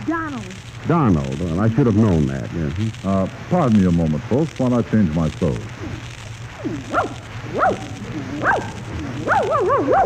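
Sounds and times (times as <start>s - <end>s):
low hum: 0.0s - 10.0s
speech: 0.0s - 10.0s
small dog yipping and barking: 6.6s - 10.0s.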